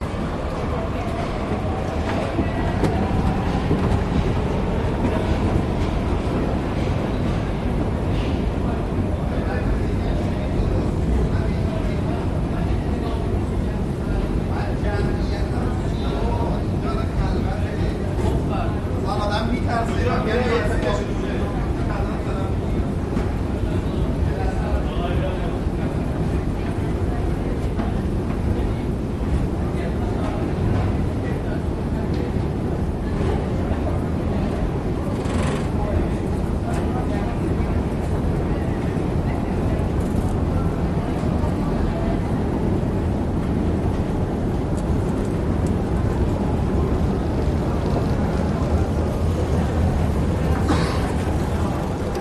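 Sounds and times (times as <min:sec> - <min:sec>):
metro train ride in Budapest Hungary: 0:00.0 - 0:52.2
people chatting on a metro in Budapest Hungary: 0:00.0 - 0:52.2
man coughing on a metro in Budapest Hungary: 0:50.6 - 0:51.2.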